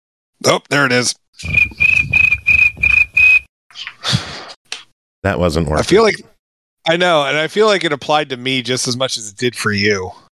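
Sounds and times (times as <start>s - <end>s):
speech: 0.4s - 1.8s, 5.2s - 10.2s
scratchy noise: 1.4s - 3.2s
cricket chirping sound effect: 1.4s - 3.4s.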